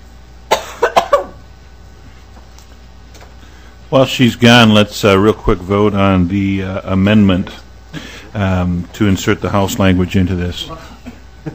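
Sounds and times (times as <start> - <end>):
person coughing: 0.5 - 1.4, 10.8 - 11.5
speech: 3.9 - 10.9.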